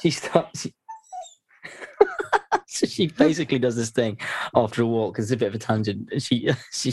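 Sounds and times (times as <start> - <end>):
speech: 0.0 - 0.8, 2.7 - 6.9
dog whimpering and crying: 0.9 - 1.4
laughter: 1.6 - 3.7.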